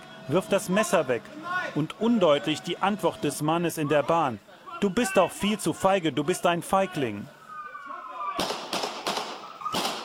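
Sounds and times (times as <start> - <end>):
speech: 0.3 - 7.4
gunshots fired by police at a man with a knife on a train: 8.4 - 10.0.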